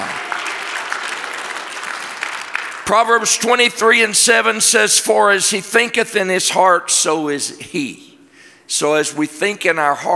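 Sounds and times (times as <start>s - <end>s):
church audience clapping: 0.0s - 3.6s
speech: 2.9s - 8.1s, 8.7s - 10.1s.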